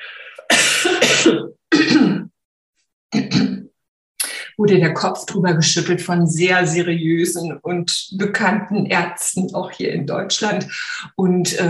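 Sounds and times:
speech: 0.4s - 1.6s, 4.6s - 11.6s
harsh loud coughing: 0.4s - 2.3s.

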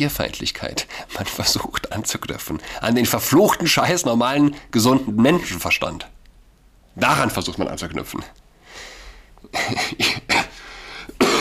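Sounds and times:
speech: 0.0s - 6.1s, 7.0s - 10.4s
harsh coughs: 9.5s - 11.4s.

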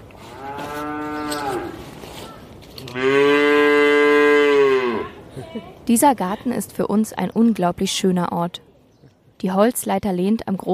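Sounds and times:
calf mooing loudly: 0.4s - 1.8s, 2.9s - 5.2s
speech: 5.9s - 8.7s, 9.4s - 10.7s.

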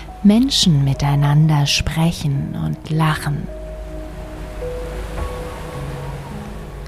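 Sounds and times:
speech: 0.2s - 3.6s
Atlantic ocean surf breaking on the shore: 3.5s - 6.8s.

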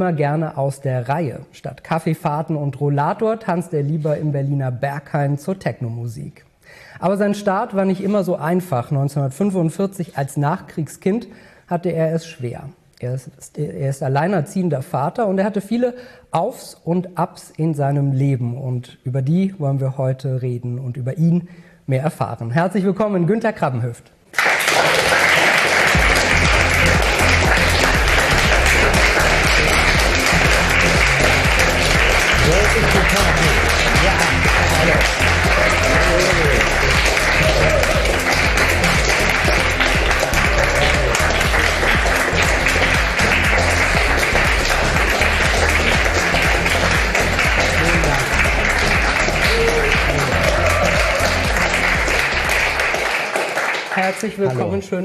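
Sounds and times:
speech: 0.0s - 25.2s, 54.2s - 55.0s
large crowd clapping loudly: 24.3s - 54.8s.

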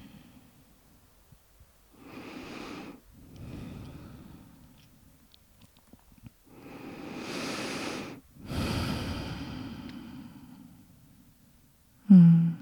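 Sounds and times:
deep breathing in and out during a guided mindfulness exercise: 1.9s - 5.2s, 6.4s - 12.6s.

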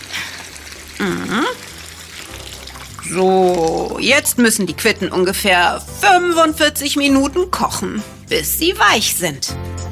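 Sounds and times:
water pouring into a cooking pot: 0.0s - 6.0s
speech: 1.0s - 1.6s, 3.1s - 9.7s.

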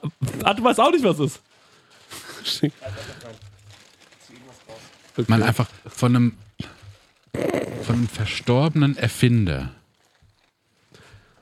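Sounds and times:
plastic bag rustling as a hand digs inside: 0.1s - 11.4s
speech: 0.5s - 1.5s, 2.4s - 3.5s, 5.2s - 6.8s, 7.4s - 9.8s.

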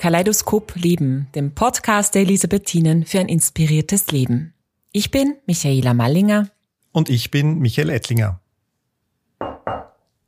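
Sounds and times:
speech: 0.0s - 8.4s
firm knocking on a wooden door: 9.4s - 10.0s.

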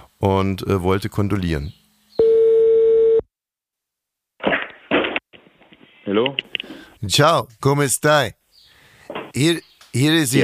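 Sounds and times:
speech: 0.2s - 1.8s, 6.2s - 8.4s, 9.3s - 10.4s
telephone ringback tone on a call to a political party's office in Italy: 2.2s - 3.2s.

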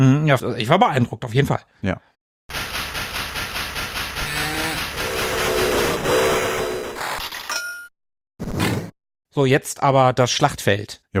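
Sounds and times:
speech: 0.0s - 2.1s, 9.4s - 11.1s
steam locomotive chuffing: 2.5s - 7.0s
steam locomotive whistle: 4.5s - 6.9s.

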